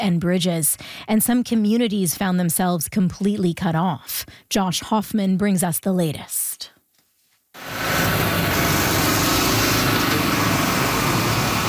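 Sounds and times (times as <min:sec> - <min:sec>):
speech: 0:00.0 - 0:06.7
bulldozer and dump truck engines running: 0:07.6 - 0:11.6.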